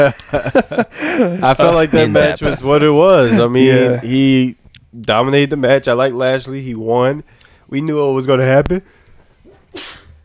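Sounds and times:
laughter: 0.0s - 4.1s
speech: 0.0s - 9.0s
sneeze: 9.4s - 10.2s.

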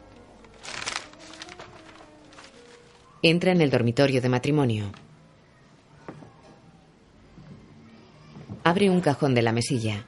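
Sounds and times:
papers being shuffled and handled on a nightstand in a bedroom: 0.0s - 3.2s
speech: 3.2s - 5.0s, 8.8s - 10.0s.

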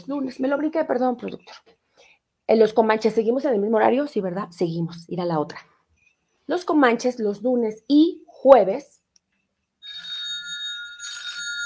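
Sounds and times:
speech: 0.0s - 1.8s, 2.5s - 5.7s, 6.5s - 9.0s
telephone ringing: 9.8s - 11.6s.

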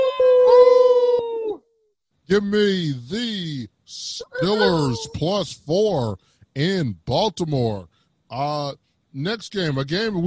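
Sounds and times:
person imitating wolf howl: 0.0s - 1.7s, 4.2s - 5.2s
speech: 2.3s - 10.2s.

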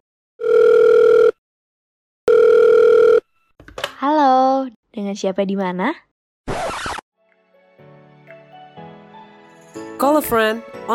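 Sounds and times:
telephone tones while placing a call: 0.4s - 1.4s, 2.3s - 3.3s
speech: 4.0s - 6.6s, 10.0s - 10.9s.

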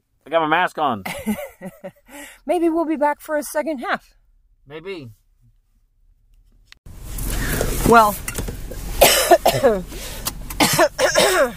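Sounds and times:
speech: 0.3s - 5.2s, 7.9s - 8.3s, 9.5s - 10.1s, 10.8s - 11.5s
person coughing and choking: 9.0s - 9.8s, 10.6s - 11.5s.

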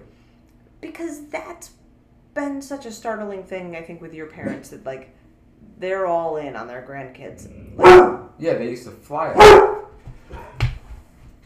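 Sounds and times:
speech: 1.0s - 1.8s, 2.4s - 5.2s, 5.8s - 9.8s
dog barking: 7.7s - 8.4s, 9.4s - 10.6s.

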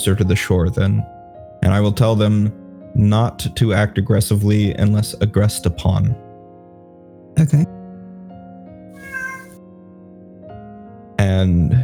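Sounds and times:
speech: 0.0s - 6.2s, 7.4s - 7.8s, 11.3s - 11.8s
steady hum of music: 0.0s - 7.8s
cat meowing: 9.0s - 9.6s.

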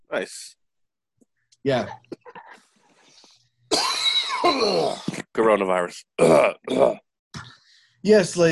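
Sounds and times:
speech: 0.1s - 0.6s, 1.6s - 2.1s, 4.4s - 7.0s, 8.0s - 8.5s
person coughing harshly: 3.7s - 5.3s, 6.2s - 7.0s.

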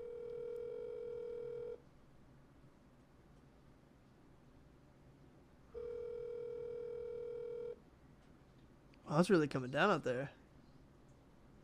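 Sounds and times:
outgoing phone call ringback tone: 0.0s - 1.8s, 5.8s - 7.8s
faint hiss: 0.0s - 11.6s
speech: 9.1s - 10.4s.

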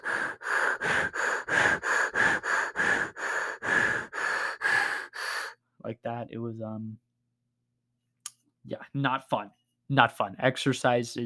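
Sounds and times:
forceful breathing into a fist: 0.0s - 5.6s
speech: 6.0s - 7.1s, 8.7s - 11.2s.

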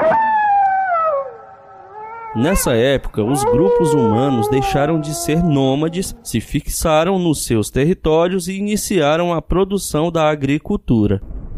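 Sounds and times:
wolf howling: 0.0s - 6.7s
speech: 2.4s - 11.3s.

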